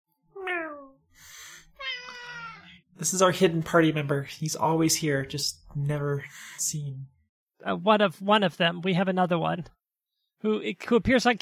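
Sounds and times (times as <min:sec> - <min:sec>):
cat meowing: 0:01.7 - 0:02.8
speech: 0:03.0 - 0:09.8, 0:10.4 - 0:11.4.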